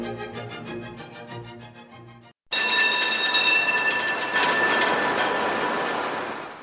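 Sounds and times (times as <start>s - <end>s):
historic Tatra T2 tram wheels grinding and squealing on rails in Prague: 2.6s - 6.6s.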